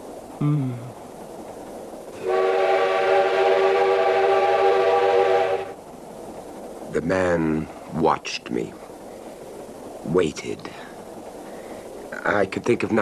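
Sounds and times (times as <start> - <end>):
speech: 0.4 - 1.0, 7.0 - 8.8, 10.0 - 10.9, 12.2 - 12.9
brief lower honk: 2.2 - 5.8
train whistle blowing as the train enters a tunnel: 2.2 - 5.8.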